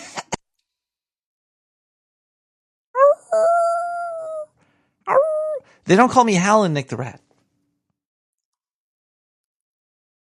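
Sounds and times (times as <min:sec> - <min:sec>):
person imitating a howl: 0:03.0 - 0:04.5, 0:05.1 - 0:05.6
speech: 0:05.9 - 0:07.3.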